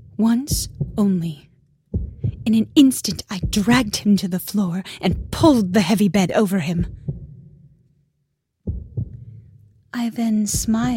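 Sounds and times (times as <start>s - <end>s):
speech: 0.2s - 1.5s, 2.4s - 7.0s, 10.0s - 10.9s
muffled heartbeat thumps: 0.5s - 1.3s, 1.9s - 4.2s, 5.1s - 5.9s, 6.7s - 7.6s, 8.6s - 9.5s, 10.5s - 10.9s.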